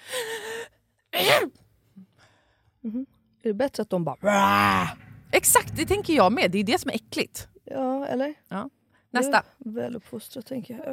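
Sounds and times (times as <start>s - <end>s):
voice imitating a stifled held-in sneeze: 1.1s - 1.6s
speech: 2.8s - 10.9s.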